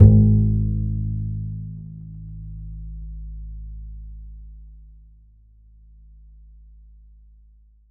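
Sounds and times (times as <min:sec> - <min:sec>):
bass note A1: 0:00.0 - 0:02.5.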